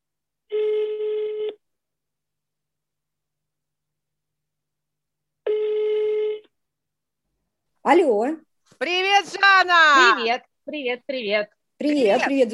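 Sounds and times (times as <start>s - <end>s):
ringback tone of an outgoing telephone call: 0.5s - 1.6s, 5.4s - 6.5s
speech: 7.9s - 12.5s.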